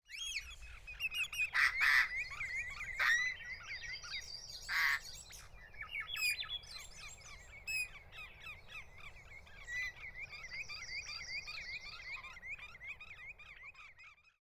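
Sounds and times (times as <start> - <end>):
birds ambience: 0.1 - 14.4.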